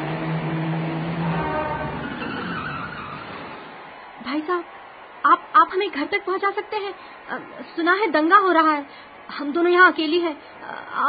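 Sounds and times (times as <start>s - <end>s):
faint tonal hum: 0.0s - 3.4s
car engine and road noise of a car approaching on a road: 0.0s - 3.8s
speech: 4.3s - 11.0s.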